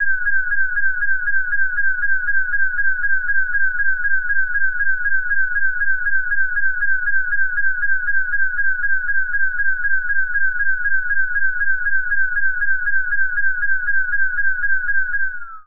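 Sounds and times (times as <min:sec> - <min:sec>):
emergency alarm: 0:00.0 - 0:15.6.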